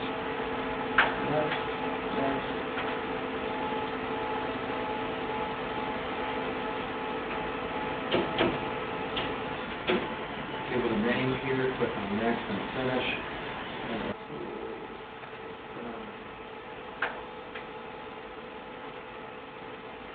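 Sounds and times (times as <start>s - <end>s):
printer printing a test page with mechanical whir and hum: 0.0s - 20.1s
speech: 1.3s - 1.7s
printer clicks and clunks: 7.3s - 10.2s.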